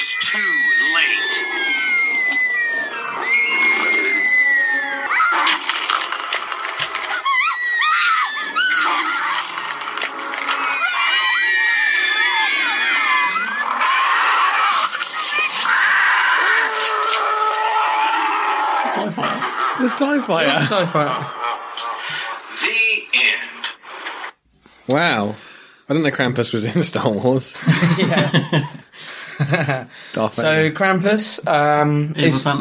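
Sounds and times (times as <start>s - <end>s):
crowd of children screaming: 0.0s - 22.4s
speech: 0.2s - 1.2s, 20.0s - 21.4s, 24.9s - 28.8s, 29.4s - 32.5s
laughter: 18.7s - 22.6s, 27.5s - 30.0s.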